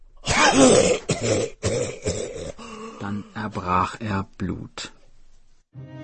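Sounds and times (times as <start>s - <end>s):
raspy throaty coughing: 0.2s - 3.2s
speech: 3.5s - 5.0s.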